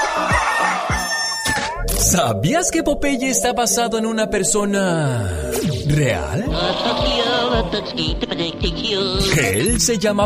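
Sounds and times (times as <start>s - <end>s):
rooster crowing: 0.0s - 1.8s
speech: 2.0s - 10.2s.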